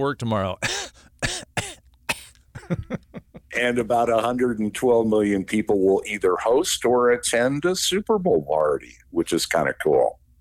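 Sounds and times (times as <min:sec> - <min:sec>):
speech: 0:00.0 - 0:01.4, 0:02.7 - 0:03.0, 0:03.6 - 0:10.2
person fake coughing: 0:00.6 - 0:02.8
laughter: 0:02.6 - 0:03.6.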